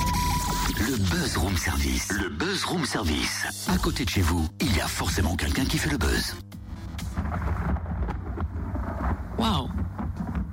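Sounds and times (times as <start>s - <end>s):
speech: 0.9s - 6.5s
deep continuous thunder: 6.8s - 10.5s.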